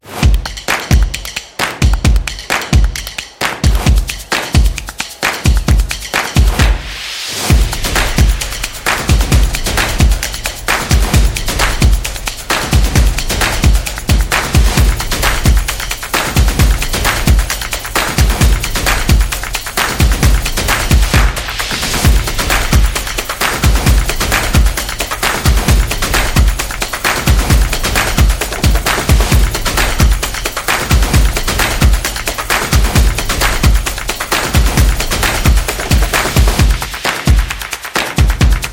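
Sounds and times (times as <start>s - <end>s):
drums: 0.0s - 38.7s
sport percussion: 0.0s - 38.7s.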